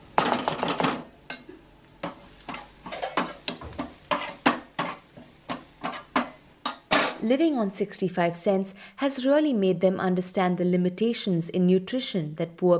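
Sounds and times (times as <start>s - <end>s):
utensil scraping and knocking against a pan, stirring spices into vegetables: 2.0s - 7.2s
speech: 7.3s - 12.7s.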